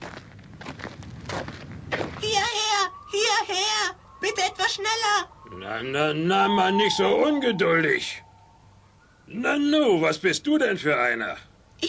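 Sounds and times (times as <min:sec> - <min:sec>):
footsteps crunching over brittle ground: 0:00.0 - 0:02.4
speech: 0:03.1 - 0:08.2, 0:09.3 - 0:11.8.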